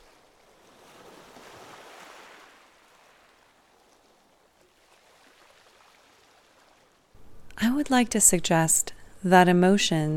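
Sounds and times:
ocean waves washing ashore: 0.0 - 7.2
speech: 7.7 - 10.1.

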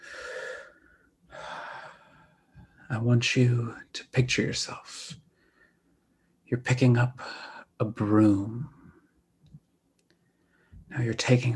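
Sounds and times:
deep breath during a guided meditation: 0.0 - 2.8, 5.2 - 6.4, 10.2 - 10.9
speech: 2.9 - 5.2, 6.5 - 8.8, 10.9 - 11.5.

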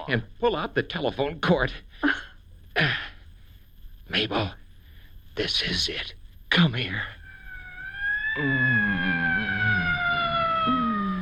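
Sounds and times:
speech: 0.1 - 3.0, 4.1 - 4.6, 5.4 - 7.2, 8.4 - 9.2
low wavering tone: 7.2 - 11.2
police siren wailing outside: 7.2 - 11.2.

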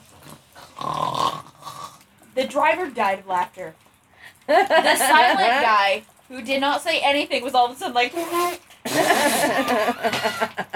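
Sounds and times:
voice imitating a sleeping man's loud rasping snore: 0.6 - 2.0
speech: 2.4 - 3.8, 4.5 - 10.7
laughter: 4.5 - 5.8, 8.9 - 10.7.

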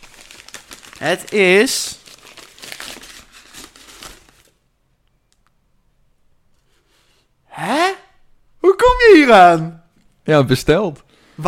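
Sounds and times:
gift wrapping paper being torn open and crinkled: 0.0 - 4.6
speech: 1.0 - 2.0, 9.3 - 11.4.

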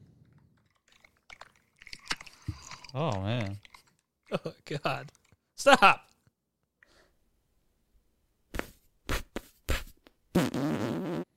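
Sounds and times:
speech: 2.9 - 3.6, 4.3 - 6.1
mouth fart sputtering pops: 8.5 - 11.3.

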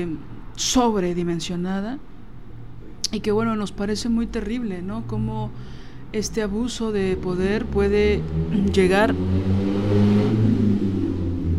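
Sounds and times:
speech: 0.0 - 2.1, 3.0 - 10.5
motorcycle engine revving past: 6.9 - 11.5.

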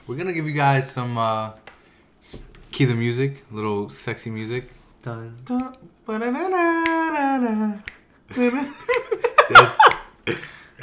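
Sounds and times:
speech: 0.1 - 1.6, 2.2 - 10.8
sharp crisp finger snaps: 7.8 - 8.1, 8.9 - 9.1, 9.9 - 10.1
people laughing: 8.3 - 10.8.

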